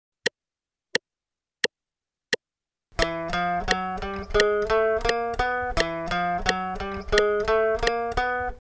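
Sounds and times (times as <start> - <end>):
guitar playing eighth notes: 3.0 - 8.5.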